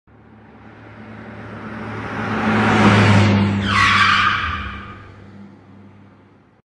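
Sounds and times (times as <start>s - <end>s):
car skid: 1.0s - 5.4s.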